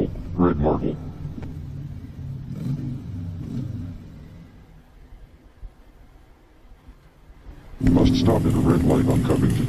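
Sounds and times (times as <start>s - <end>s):
car engine revving while driving: 0.0s - 5.6s, 7.6s - 9.6s
speech: 0.5s - 1.1s, 8.2s - 9.6s.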